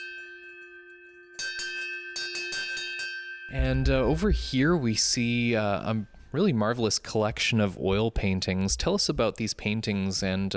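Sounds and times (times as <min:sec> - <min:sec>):
hand bell on antique fire cart ringing: 0:00.0 - 0:03.9
speech: 0:03.5 - 0:10.5.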